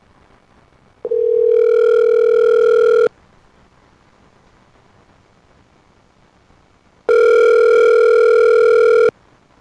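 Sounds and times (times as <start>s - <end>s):
loud steady electronic telephone tone: 1.1s - 3.1s, 7.1s - 9.1s.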